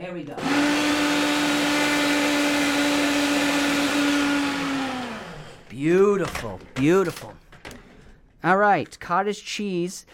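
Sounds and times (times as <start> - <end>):
speech: 0.0 - 1.0, 5.8 - 7.4, 8.4 - 10.1
blender motor running: 0.3 - 5.7.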